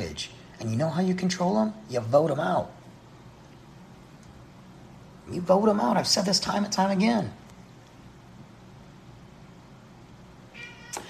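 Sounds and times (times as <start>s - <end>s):
speech: 0.0s - 2.8s, 5.3s - 7.4s
steady low hum: 0.0s - 11.0s
pet cat meowing: 10.5s - 11.0s.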